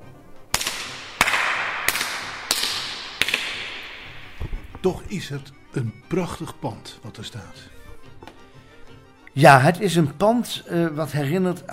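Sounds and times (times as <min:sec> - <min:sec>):
claps echoing in a large synagogue hall: 0:00.5 - 0:04.8
speech: 0:04.8 - 0:07.8, 0:09.4 - 0:11.7.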